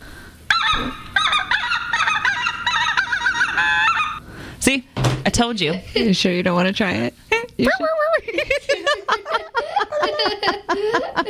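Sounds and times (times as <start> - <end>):
flock of speckled-belly geese yelping honks: 0.5 - 4.2
speech: 4.7 - 8.5, 10.0 - 11.2
laughter: 8.0 - 11.2.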